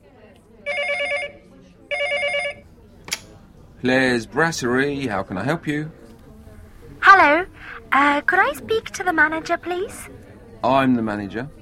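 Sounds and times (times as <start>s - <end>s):
telephone ringing with a warbling electronic trill: 0.7s - 2.6s
speech: 3.8s - 6.0s, 8.0s - 11.6s.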